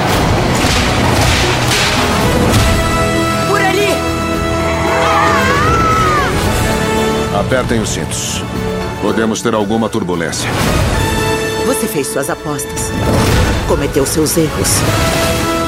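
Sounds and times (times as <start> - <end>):
dramatic orchestral music: 0.0 - 15.6
whip cracking: 0.6 - 2.8
wailing swooping cries: 4.4 - 6.8
speech: 7.5 - 15.5.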